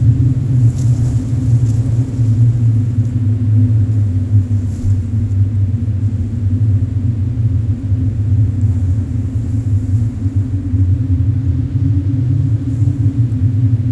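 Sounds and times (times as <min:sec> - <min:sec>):
wind in a tunnel: 0:00.0 - 0:13.9.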